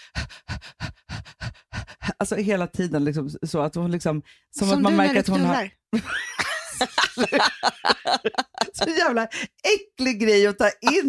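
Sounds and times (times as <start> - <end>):
person imitating heavy panting of a female dog in her whelping box: 0.0 - 2.2
speech: 2.2 - 6.2, 6.8 - 11.0
laughter: 6.0 - 9.1.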